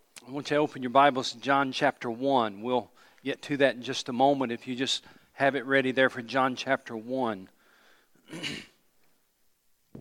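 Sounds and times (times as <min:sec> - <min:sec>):
speech: 0:00.2 - 0:07.6, 0:08.3 - 0:08.7
person coughing: 0:08.2 - 0:08.8.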